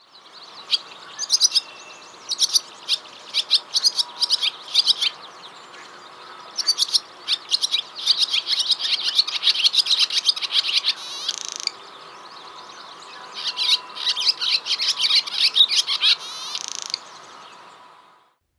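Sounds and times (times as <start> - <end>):
barn swallow twittering: 0.5 - 18.2.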